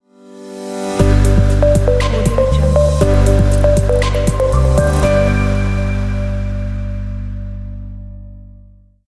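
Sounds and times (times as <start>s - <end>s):
tech logo sound: 1.0s - 7.0s.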